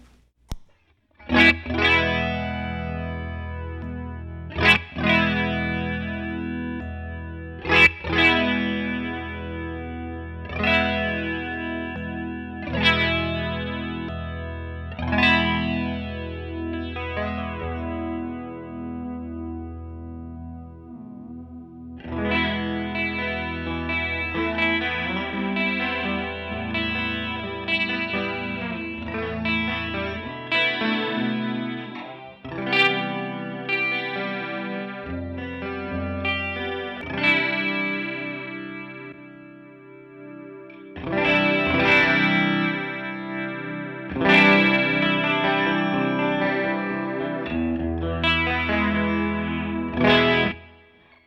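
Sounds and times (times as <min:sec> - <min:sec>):
small click: 0:00.0 - 0:01.0
electric guitar chords through an effects pedal: 0:01.2 - 0:51.2.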